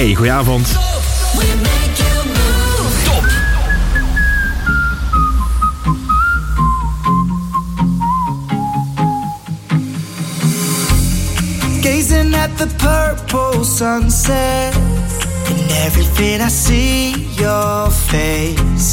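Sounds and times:
speech: 0.0 - 1.8, 11.9 - 15.0, 15.7 - 18.9
full band backing with steady drums and bass: 0.0 - 18.9
clear sustained whistled melody gliding downward: 3.1 - 10.0.

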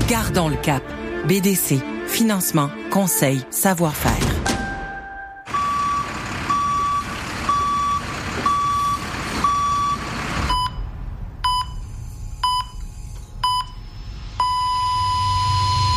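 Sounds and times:
speech: 0.1 - 4.4
construction vehicle reversing alarm beeps: 4.6 - 15.9
heavy construction vehicle engine rumble: 5.5 - 14.0.

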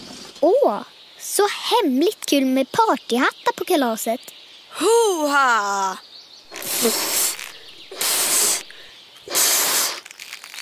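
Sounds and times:
speech: 0.4 - 7.2
person blowing air into a balloon: 6.5 - 10.3.

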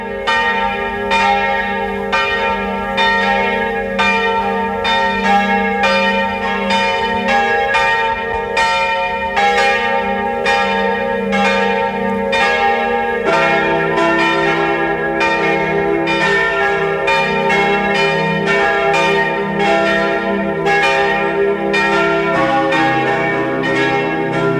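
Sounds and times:
parish church bells pealing in Mistelbach Lower Austria at noon: 0.0 - 24.5.

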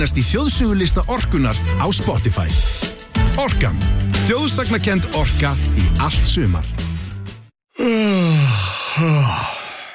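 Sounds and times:
speech: 0.0 - 6.8, 9.0 - 9.5
person yawning: 7.7 - 9.9.

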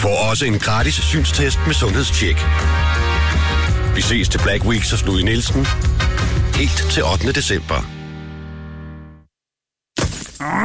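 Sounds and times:
speech: 0.0 - 8.0
car windscreen glass cracking from a stone chip: 10.0 - 10.6.

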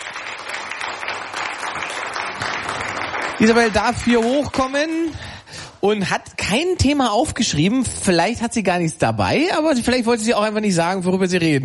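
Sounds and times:
audience applauding: 0.0 - 5.2
speech: 3.4 - 11.6.

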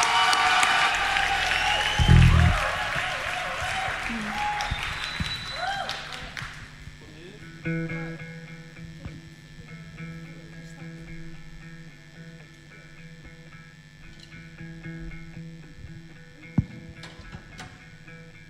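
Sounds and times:
audience applause and cheering for a band at a music competition: 0.0 - 6.7.

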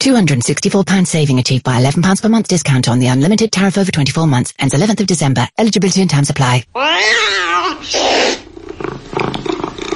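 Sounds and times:
speech: 0.0 - 8.3
cat with loud drawn-out wavering meow: 6.8 - 8.4.

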